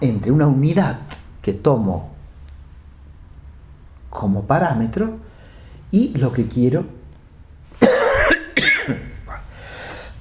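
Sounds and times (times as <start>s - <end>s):
speech: 0.1s - 2.1s, 4.1s - 5.3s, 5.9s - 7.0s, 8.9s - 9.1s
harsh throaty coughs by a lecturer: 7.8s - 9.4s.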